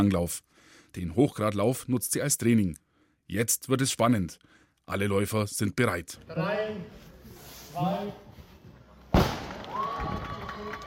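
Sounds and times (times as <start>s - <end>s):
speech: 0.0s - 7.0s, 7.8s - 8.2s
starting gun cannon shot at race start: 9.1s - 9.6s.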